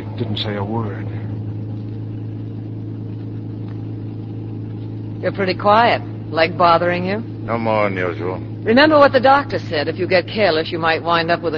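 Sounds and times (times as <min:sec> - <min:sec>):
car engine running with a steady low droning hum: 0:00.0 - 0:11.5
speech: 0:00.2 - 0:01.2, 0:05.2 - 0:11.5.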